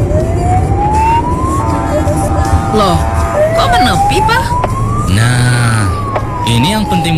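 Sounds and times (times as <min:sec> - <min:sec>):
emergency vehicle siren wailing: 0:00.0 - 0:07.1
low rumble of road traffic heard from inside a moving car: 0:00.0 - 0:07.1
speech: 0:02.8 - 0:07.1.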